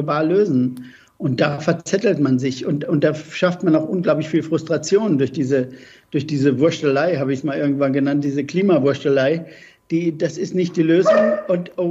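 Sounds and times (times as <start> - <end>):
speech: 0.0 - 11.8
dog barking: 11.0 - 11.7.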